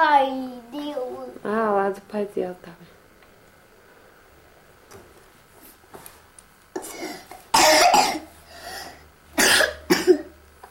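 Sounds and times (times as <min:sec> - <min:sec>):
speech: 0:01.9 - 0:02.9
child coughing: 0:06.8 - 0:08.3, 0:09.4 - 0:10.4.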